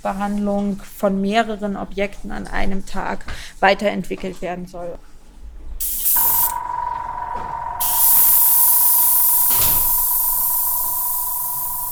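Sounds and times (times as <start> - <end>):
speech: 0.0 - 5.1
constant whining tone: 5.8 - 11.9
rattling bursts: 5.8 - 11.9
spray gun spraying nanocellulose onto a sheet of paper: 5.8 - 11.9.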